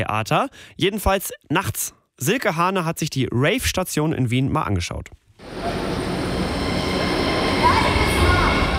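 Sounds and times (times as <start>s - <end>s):
speech: 0.0s - 5.8s
faint metallic whines and squeals of a subway train: 5.4s - 8.7s
subway train rumbling through an underground station: 5.4s - 8.7s.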